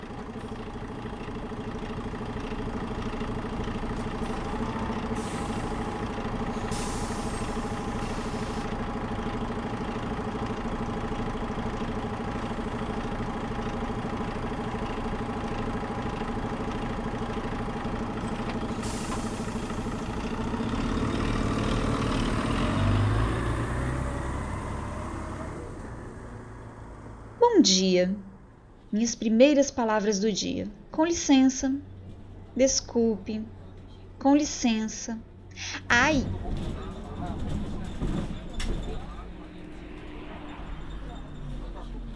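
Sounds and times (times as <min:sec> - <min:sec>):
city bus engine idling: 0:00.0 - 0:42.1
city bus air brakes hissing: 0:05.2 - 0:08.7, 0:18.7 - 0:20.1
speech: 0:27.6 - 0:28.2, 0:28.9 - 0:31.9, 0:32.6 - 0:33.6, 0:34.2 - 0:38.3.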